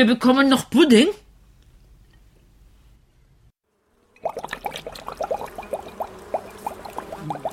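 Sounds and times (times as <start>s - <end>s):
speech: 0.0s - 1.2s
liquid poured into a sprayer: 4.2s - 7.5s.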